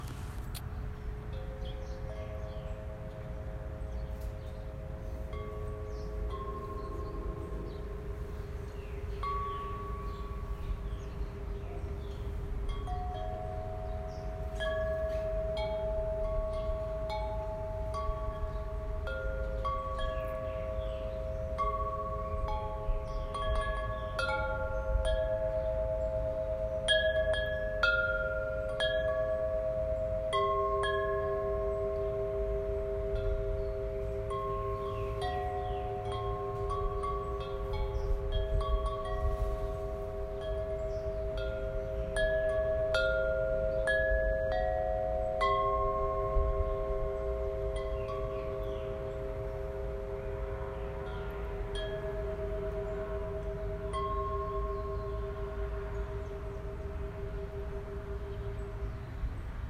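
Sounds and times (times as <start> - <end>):
chime in the morning: 1.0 - 59.6.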